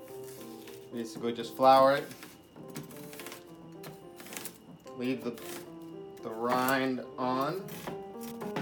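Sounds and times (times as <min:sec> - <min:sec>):
speech: 0:00.9 - 0:02.2, 0:05.0 - 0:05.6, 0:06.2 - 0:08.0
knife chopping an onion: 0:02.0 - 0:04.6, 0:05.2 - 0:05.7, 0:06.3 - 0:08.6.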